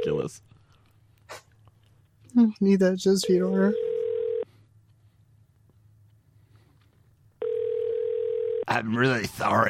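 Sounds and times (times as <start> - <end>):
speech: 0.2 - 0.5, 2.4 - 3.9, 8.7 - 9.6
quiet telephone line hum: 3.2 - 4.5, 7.4 - 8.7
buzzy telephone ringback tone over the line as a call is patched in: 3.3 - 4.4, 7.4 - 8.7.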